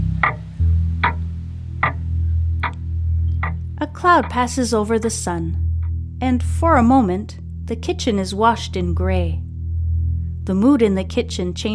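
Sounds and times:
low constant hum: 0.0 - 11.7
clock in a kitchen ticking: 3.4 - 5.3
speech: 3.8 - 5.6, 6.2 - 9.4, 10.4 - 11.7.

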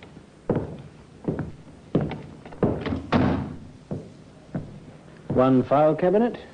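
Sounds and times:
hollow thunks and knocks of a business door being opened: 2.0 - 3.7
short rattle of a business door: 2.6 - 3.6
speech: 5.4 - 6.5.

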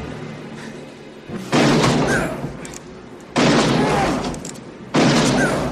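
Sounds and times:
gunshots with long echo in a film scene: 1.4 - 2.4, 3.3 - 4.2, 4.9 - 5.7.

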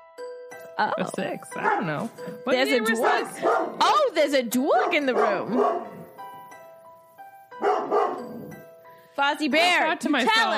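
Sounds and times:
speech: 0.7 - 6.0, 9.2 - 10.5
dog barking loudly at a door: 1.6 - 1.9, 3.0 - 3.9, 4.7 - 6.1, 7.6 - 8.5.

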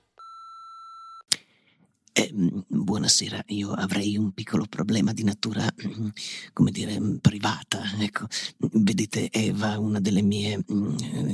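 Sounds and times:
answering machine beep: 0.2 - 1.2
speech: 2.2 - 11.3.

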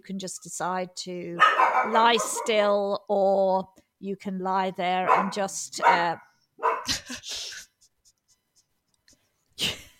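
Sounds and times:
speech: 0.0 - 7.6
dog barking at people moving around outside: 1.4 - 2.7, 5.0 - 6.9.

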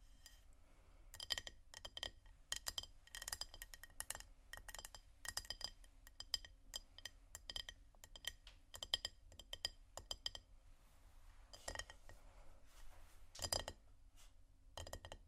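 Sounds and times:
bright glassy taps and clinks: 1.2 - 10.5, 11.6 - 12.0, 13.4 - 13.8.

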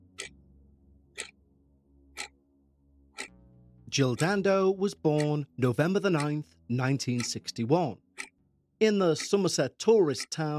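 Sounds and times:
clock ticking: 0.1 - 0.4, 1.2 - 1.4, 3.2 - 10.5
speech: 3.9 - 8.0, 8.8 - 10.5.

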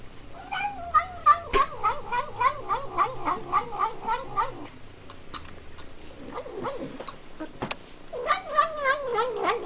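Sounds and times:
cat caterwauling in a played video: 0.3 - 4.7, 8.2 - 9.6.

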